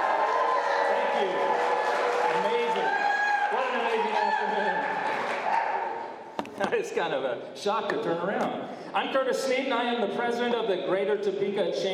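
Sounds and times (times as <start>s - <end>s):
large rally crowd cheering and whooping: 0.0s - 6.1s
speech: 6.8s - 11.9s.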